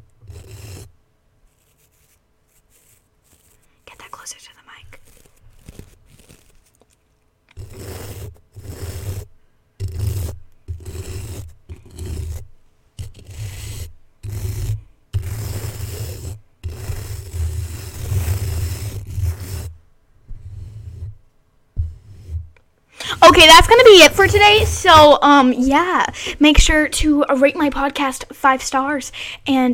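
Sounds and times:
broken toothbrush scraping and rubbing: 0:00.0 - 0:00.9, 0:01.5 - 0:12.4, 0:13.0 - 0:19.7, 0:23.0 - 0:25.3
speech: 0:04.3 - 0:04.9, 0:23.4 - 0:29.7.

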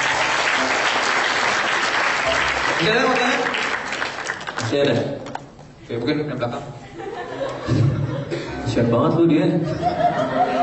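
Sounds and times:
audience applause: 0:00.0 - 0:04.8
speech: 0:02.8 - 0:03.2, 0:04.7 - 0:05.3, 0:05.9 - 0:06.8, 0:08.7 - 0:10.5
laughter: 0:06.7 - 0:08.9, 0:09.5 - 0:10.6.

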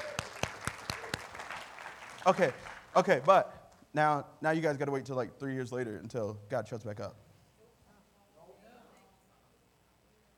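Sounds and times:
audience clapping: 0:00.0 - 0:03.4
speech: 0:02.2 - 0:07.2.

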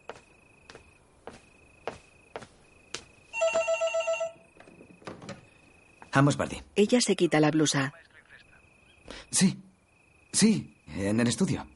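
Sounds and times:
footsteps of a man crossing a room: 0:00.0 - 0:03.7
telephone bell ringing: 0:03.4 - 0:04.5
speech: 0:06.2 - 0:08.1, 0:09.4 - 0:09.6, 0:10.3 - 0:11.7.

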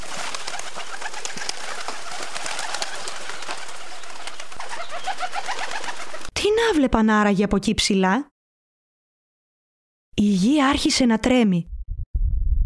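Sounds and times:
flock of birds' wings fluttering taking off from their nest: 0:00.0 - 0:06.3
soft pigeon-like bird calls: 0:00.5 - 0:06.3
speech: 0:06.7 - 0:08.3, 0:10.2 - 0:11.7.

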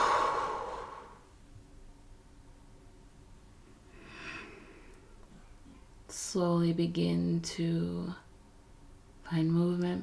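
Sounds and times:
person exhaling deeply out of the mouth during a guided relaxation: 0:00.0 - 0:01.2, 0:03.9 - 0:04.9
speech: 0:06.2 - 0:08.2, 0:09.3 - 0:10.0.

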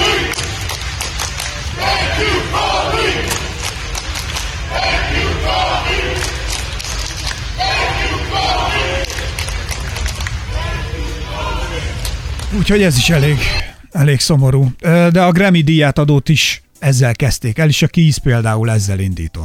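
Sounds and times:
rhythmic repeated shouts of fans: 0:00.0 - 0:13.6
large outdoor crowd of fans chanting and singing in unison: 0:00.0 - 0:13.8
speech: 0:12.7 - 0:19.4.

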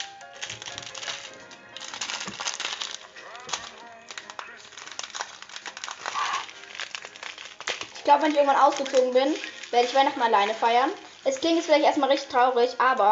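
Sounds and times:
plastic bag being torn open by hand: 0:00.0 - 0:13.1
speech: 0:08.1 - 0:13.1.

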